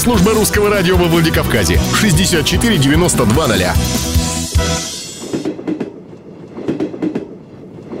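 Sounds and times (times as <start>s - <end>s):
speech: 0.0s - 4.9s
brief tonal blare: 4.5s - 5.4s
train wheels clattering along the rails: 4.9s - 7.9s.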